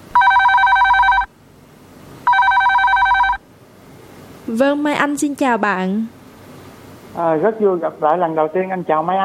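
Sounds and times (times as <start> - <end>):
telephone ringing with a bright trilling electronic tone: 0.2 - 1.3, 2.2 - 3.4
speech: 4.5 - 6.2, 7.2 - 9.2.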